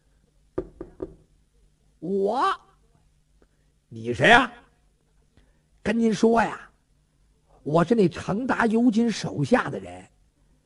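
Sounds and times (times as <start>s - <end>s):
gentle knocking on a door: 0.6s - 1.3s
speech: 2.0s - 2.6s, 3.9s - 4.6s, 5.8s - 6.6s, 7.6s - 10.1s.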